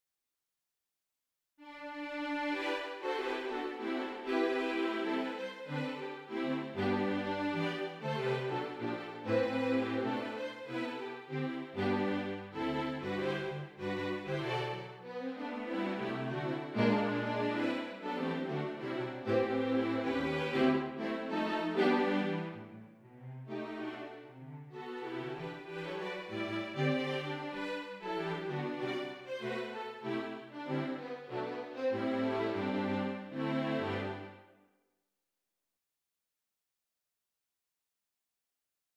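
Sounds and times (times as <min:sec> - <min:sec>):
string quartet playing: 0:01.7 - 0:34.5.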